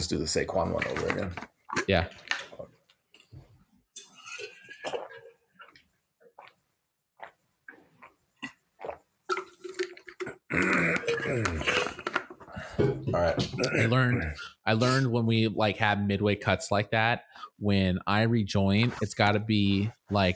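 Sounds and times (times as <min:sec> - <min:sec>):
speech: 0:00.0 - 0:02.3, 0:11.2 - 0:11.8, 0:12.8 - 0:20.3
person drinking water from a glass with gulps and swallows: 0:00.8 - 0:03.3, 0:04.0 - 0:06.6, 0:07.2 - 0:15.0.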